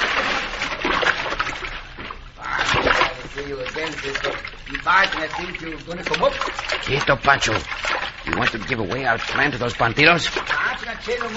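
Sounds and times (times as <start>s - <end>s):
water churning and splashing as someone thrashes: 0.0s - 11.3s
man calling out: 2.4s - 7.6s, 8.4s - 11.3s
speech: 3.5s - 11.3s.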